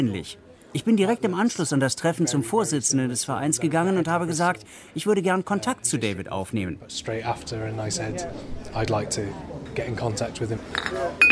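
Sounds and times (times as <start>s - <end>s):
busy chatter of a lively crowd: 0.0s - 11.3s
speech: 0.0s - 11.3s
beer glasses clinking together in a toast: 10.7s - 11.3s.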